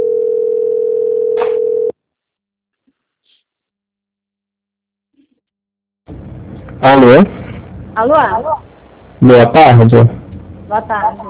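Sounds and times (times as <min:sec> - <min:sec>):
loud steady telephone tone: 0:00.0 - 0:02.0
speech: 0:06.8 - 0:07.4, 0:08.0 - 0:08.6, 0:09.2 - 0:11.2.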